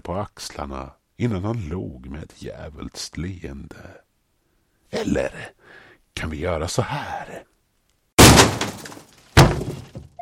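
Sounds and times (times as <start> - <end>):
speech: 0.0 - 4.0, 4.9 - 7.5
door being kicked open: 8.2 - 10.2.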